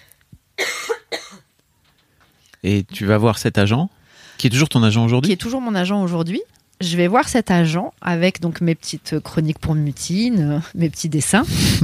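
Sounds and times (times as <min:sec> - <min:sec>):
woman coughing: 0:00.6 - 0:01.5
speech: 0:02.6 - 0:11.8.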